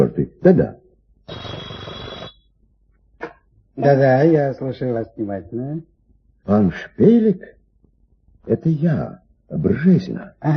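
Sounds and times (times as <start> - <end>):
speech: 0.0 - 1.6, 3.8 - 7.6, 8.4 - 10.5
telephone bell ringing: 1.3 - 2.4.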